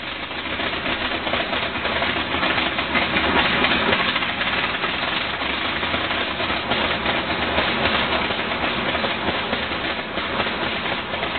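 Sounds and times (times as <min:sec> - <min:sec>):
engine of a replica of the early Wright Flyer aircraft: 0:00.0 - 0:11.3.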